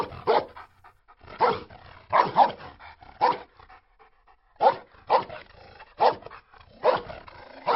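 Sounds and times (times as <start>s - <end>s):
dogs barking while chasing cyclists: 0.0s - 0.7s, 1.3s - 3.6s, 4.6s - 7.7s
dog panting: 0.0s - 7.7s.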